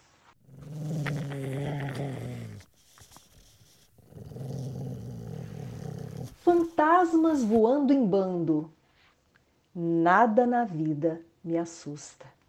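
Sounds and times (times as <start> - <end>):
angry dogs growling: 0.4 - 7.6
speech: 6.5 - 8.8, 9.8 - 12.3.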